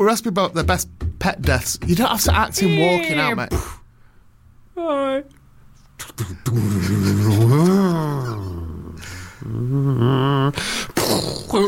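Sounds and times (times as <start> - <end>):
speech: 0.0 - 3.8, 4.8 - 5.4, 6.0 - 8.5, 9.4 - 11.6
man vocally imitating a car revving and driving off: 1.9 - 3.6.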